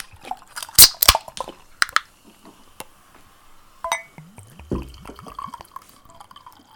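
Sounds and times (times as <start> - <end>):
red wine glugging into a glass: 3.8 - 6.7
sharp clinks and knocks: 3.9 - 4.1.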